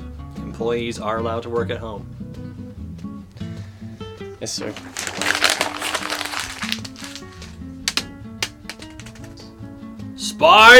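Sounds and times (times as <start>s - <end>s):
speech: 0.6s - 2.5s, 4.4s - 5.3s, 10.4s - 10.7s
paper being crumpled up and thrown away: 4.6s - 9.4s.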